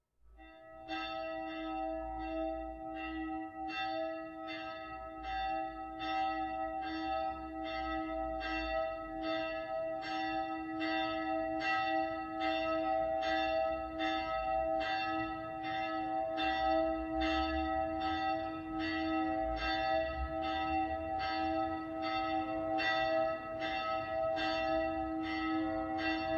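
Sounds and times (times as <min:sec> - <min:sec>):
cathedral bell tuned to E ringing: 0:00.3 - 0:26.3.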